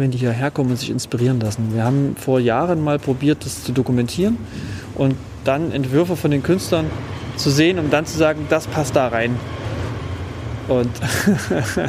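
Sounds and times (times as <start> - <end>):
speech: 0.0 - 9.6, 10.7 - 11.8
passing S-Bahn train rumbling and rushing: 0.0 - 11.8
laughter: 10.8 - 11.8.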